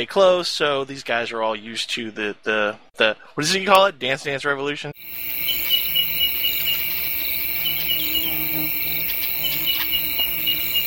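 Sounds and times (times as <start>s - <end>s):
speech: 0.0s - 5.5s
crickets chirping: 5.0s - 10.8s.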